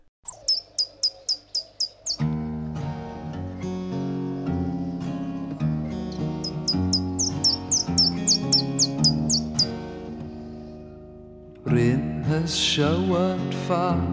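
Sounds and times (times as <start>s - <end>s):
bright high bird chirps: 0.2s - 2.2s, 6.1s - 9.7s
instrumental music track with sustained chords: 0.3s - 11.6s
speech: 12.5s - 14.1s.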